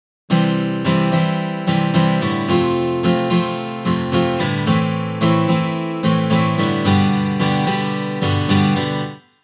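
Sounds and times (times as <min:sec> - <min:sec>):
MIDI guitar playing an eight-beat pattern: 0:00.3 - 0:09.2.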